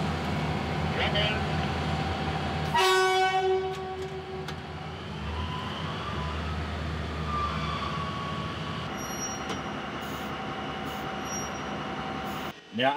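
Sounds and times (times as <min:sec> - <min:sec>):
work train hauled by diesel locomotives departing: 0:00.0 - 0:12.9
diesel work train horn blast: 0:02.7 - 0:04.5.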